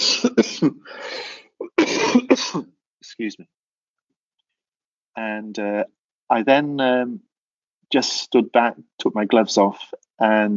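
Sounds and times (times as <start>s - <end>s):
harsh coughing: 0.0s - 2.8s
speech: 0.4s - 1.0s, 5.2s - 7.3s, 7.9s - 10.5s.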